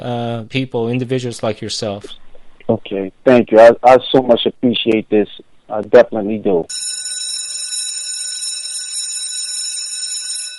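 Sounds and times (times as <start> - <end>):
speech: 0.0 - 6.8
bell ringing to signal program end: 6.7 - 10.5.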